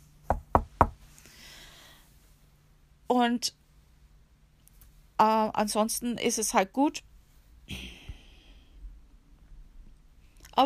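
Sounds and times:
knocking on wood: 0.3s - 1.0s
speech: 3.1s - 3.6s, 5.2s - 7.1s.

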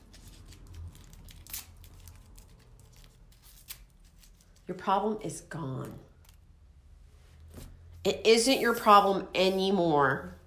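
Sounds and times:
paper being torn up: 0.0s - 4.6s
speech: 4.7s - 6.1s, 8.0s - 10.4s.

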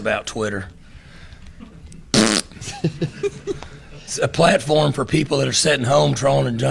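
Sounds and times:
speech: 0.0s - 0.8s, 2.7s - 6.6s
man making a fart noise with his mouth: 2.1s - 2.8s
laughter: 2.5s - 4.1s.

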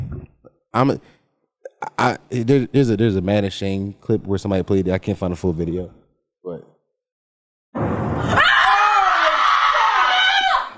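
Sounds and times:
short vocal sound: 0.0s - 0.5s
speech: 0.7s - 1.2s, 1.8s - 6.7s
woman screaming in a played video clip: 8.3s - 10.7s.

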